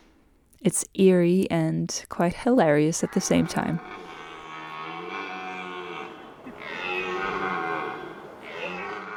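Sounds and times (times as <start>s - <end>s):
speech: 0.6s - 4.0s
male deer roaring during rut: 3.1s - 9.1s.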